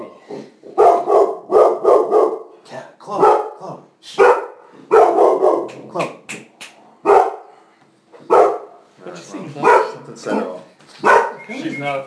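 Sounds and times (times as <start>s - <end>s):
dog barking: 0.7s - 2.5s, 3.2s - 3.6s, 4.2s - 5.9s, 7.0s - 7.6s, 8.2s - 8.8s, 9.6s - 11.5s
speech: 10.2s - 10.5s, 11.6s - 12.0s.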